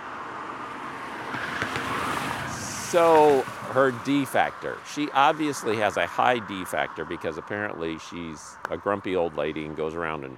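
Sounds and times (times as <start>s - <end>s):
car passing by with road whoosh: 0.0s - 7.8s
speech: 2.9s - 10.3s.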